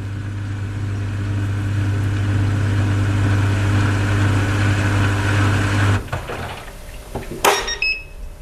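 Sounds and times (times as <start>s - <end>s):
small European clothes dryer motor humming: 0.0s - 8.4s
short high electronic beep of clothes dryer: 7.5s - 8.2s.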